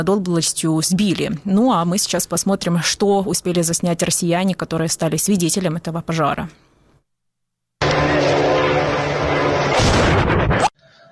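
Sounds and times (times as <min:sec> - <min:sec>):
speech: 0:00.0 - 0:06.7
powerful rumbling explosion with crackling bursts in filmed footage: 0:07.8 - 0:10.8.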